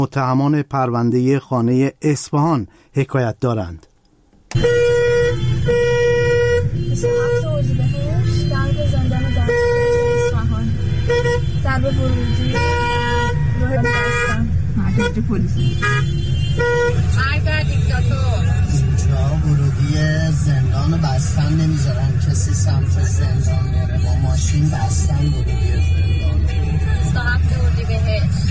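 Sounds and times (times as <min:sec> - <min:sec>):
speech: 0:00.0 - 0:03.9, 0:04.5 - 0:04.8, 0:15.0 - 0:18.3, 0:20.0 - 0:28.5
engine rumble: 0:04.4 - 0:28.5
car horns honking in a dense traffic jam: 0:04.5 - 0:28.5.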